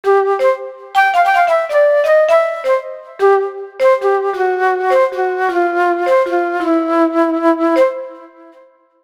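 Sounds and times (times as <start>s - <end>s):
flute: 0.0s - 9.0s
marimba: 0.4s - 6.7s.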